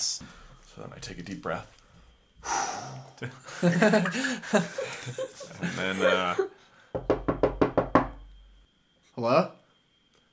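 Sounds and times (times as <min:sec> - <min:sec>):
speech: 0:00.0 - 0:01.8, 0:02.4 - 0:07.2, 0:09.2 - 0:09.6
laughter: 0:03.2 - 0:06.6
foley knocks on a door: 0:06.9 - 0:08.3.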